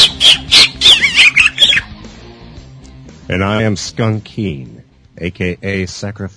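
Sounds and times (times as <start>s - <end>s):
pet bird squawking: 0.0s - 2.1s
speech: 3.3s - 6.3s.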